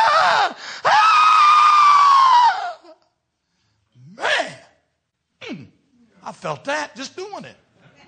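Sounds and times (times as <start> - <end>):
single voice imitating people screaming: 0.0 - 3.0, 4.1 - 4.8
speech: 6.4 - 7.6.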